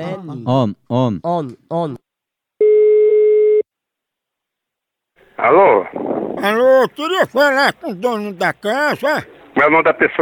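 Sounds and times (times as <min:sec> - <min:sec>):
speech: 0:00.0 - 0:02.0, 0:05.4 - 0:10.1
ringback tone on an outgoing telephone call: 0:02.6 - 0:03.6.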